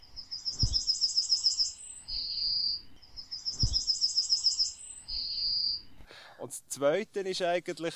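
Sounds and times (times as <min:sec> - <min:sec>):
small seed-eating farmland bird singing chirps and a buzzy trill: 0:00.0 - 0:05.9
speech: 0:06.8 - 0:07.9.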